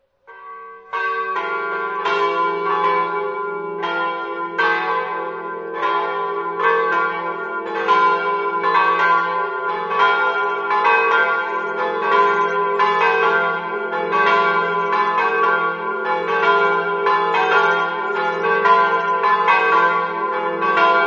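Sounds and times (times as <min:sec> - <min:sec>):
church bells ringing: 0:00.3 - 0:21.0.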